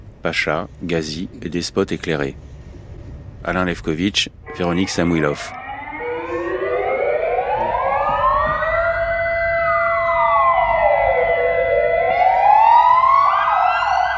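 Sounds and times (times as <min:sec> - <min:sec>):
speech: 0:00.2 - 0:02.5, 0:03.4 - 0:05.6
memorial siren wailing at the hour of Atatürk's death: 0:04.4 - 0:14.1.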